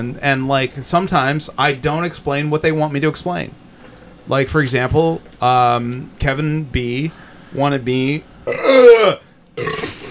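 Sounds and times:
speech: 0.0s - 3.6s, 4.3s - 9.9s
person burping close to the microphone: 8.5s - 10.1s
throaty belch next to the microphone: 8.5s - 10.1s.

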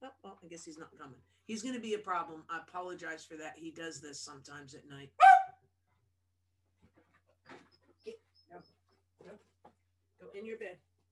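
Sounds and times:
speech: 0.5s - 5.3s, 10.4s - 10.9s
dog barking: 5.2s - 5.6s.

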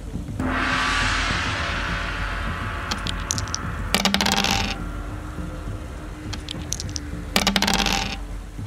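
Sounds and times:
steady hiss: 0.0s - 8.6s
dice rattling and clattering across a hard surface: 6.4s - 8.6s.

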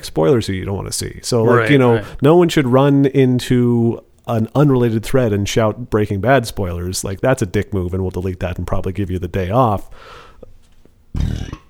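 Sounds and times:
speech: 0.0s - 10.3s, 11.2s - 11.6s
low rumbling belch off-mic: 11.2s - 11.6s.

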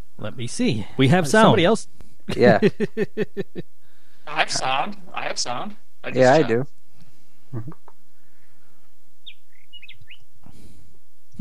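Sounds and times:
speech: 0.2s - 6.8s, 7.5s - 7.8s
laughter: 2.3s - 3.6s
chat bird-chirp notification sound: 9.6s - 10.2s.

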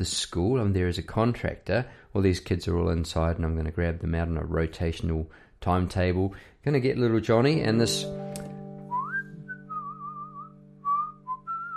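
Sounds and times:
speech: 0.0s - 8.5s
person whistling a melodic tune: 8.9s - 11.7s.

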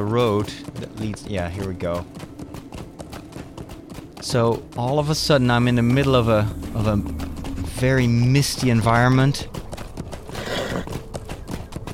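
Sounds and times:
speech: 0.0s - 2.3s, 4.2s - 9.6s
horse hooves clopping in a video game: 0.0s - 11.9s
horse whinny in a video game: 10.3s - 10.9s.

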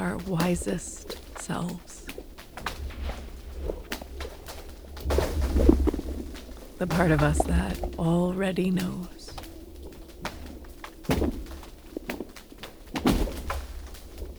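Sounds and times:
person speaking softly in a calm voice: 0.0s - 2.2s, 6.8s - 9.4s
owl hooting: 0.0s - 10.3s
speech: 0.2s - 2.1s, 6.8s - 9.2s.

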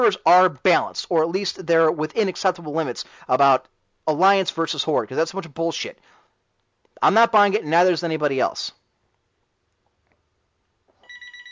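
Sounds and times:
speech: 0.0s - 6.2s, 7.0s - 8.8s
telephone ringing with an electronic trill: 11.0s - 11.5s.

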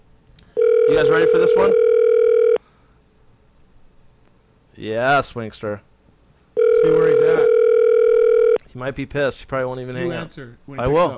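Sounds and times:
steady electronic tone from a house landline telephone: 0.6s - 2.6s, 6.6s - 8.6s
speech: 0.9s - 1.9s, 4.8s - 5.9s, 6.8s - 7.3s, 8.7s - 11.1s.

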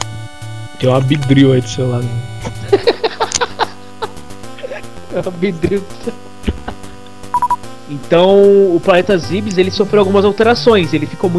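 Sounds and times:
steady electrical hum with faint hiss on a call line: 0.0s - 10.0s
speech: 0.8s - 2.6s, 5.2s - 6.3s, 7.9s - 11.3s
laughter: 2.4s - 5.4s, 6.4s - 7.2s
quick tone beeps on a call line: 7.3s - 7.6s.

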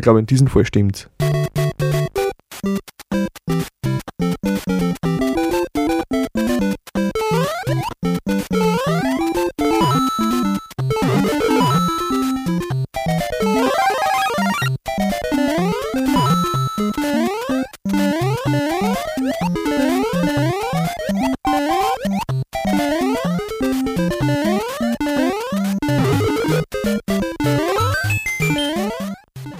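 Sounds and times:
speech: 0.0s - 1.2s
bright bouncy retro video game first-level theme in chiptune tones: 1.2s - 29.5s.

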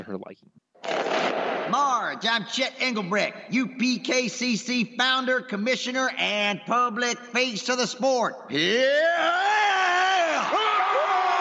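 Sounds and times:
speech: 0.0s - 9.5s
group of men yelling loudly: 8.6s - 11.4s.

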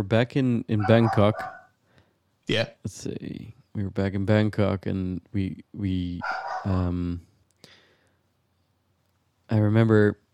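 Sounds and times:
speech: 0.0s - 1.6s, 2.5s - 7.3s, 9.5s - 10.2s
loud deep dog barking: 0.8s - 1.8s, 6.2s - 6.8s.

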